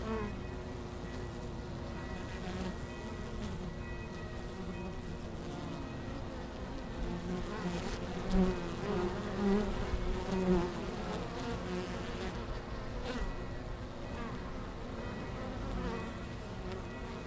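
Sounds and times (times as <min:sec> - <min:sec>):
honey bees buzzing in Langel, Köln, Deutschland in early October: 0:00.0 - 0:17.2.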